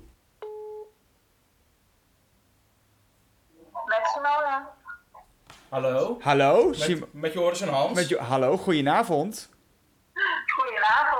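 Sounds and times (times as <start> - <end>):
faint hiss: 0.0 - 11.1
telephone ringback tone while placing a call: 0.4 - 0.9
speech: 5.7 - 9.6.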